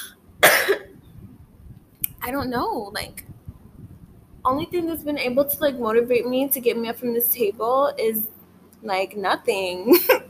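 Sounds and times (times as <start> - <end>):
single sharp cough: 0.0 - 0.9
speech: 2.3 - 3.3, 4.4 - 10.2.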